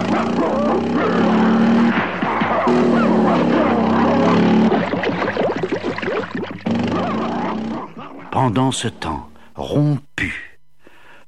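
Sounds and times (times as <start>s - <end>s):
two large dogs barking while chasing a motorcycle: 0.0s - 8.9s
motorcycle engine drone: 0.0s - 10.0s
speech: 8.5s - 10.4s.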